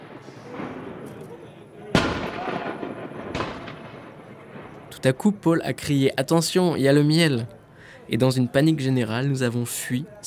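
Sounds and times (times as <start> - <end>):
steady murmur: 0.0 - 10.2
gunshots from village-made muzzle-loading rifles: 1.9 - 4.7
speech: 5.0 - 10.2.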